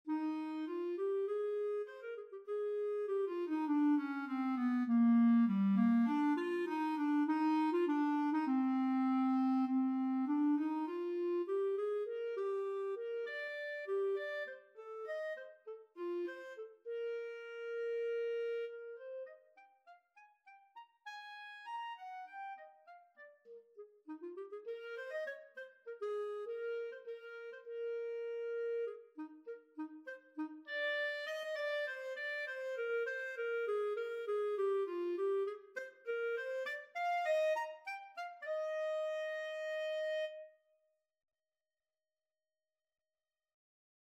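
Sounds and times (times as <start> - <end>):
clarinet: 0.0 - 40.8.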